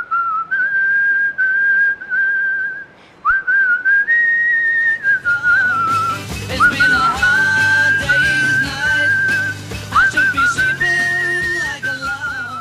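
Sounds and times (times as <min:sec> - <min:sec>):
man whistling a bright pop melody: 0:00.0 - 0:12.6
full backing band playing: 0:05.4 - 0:12.6.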